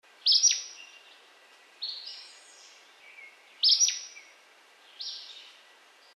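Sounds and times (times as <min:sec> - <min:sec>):
Acadian flycatcher calling: 0:00.2 - 0:01.1, 0:01.8 - 0:05.6.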